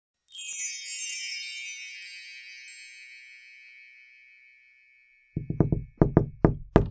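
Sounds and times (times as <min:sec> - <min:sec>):
shimmering tinkling chime: 0:00.2 - 0:05.4
knocking on a door: 0:05.4 - 0:06.9.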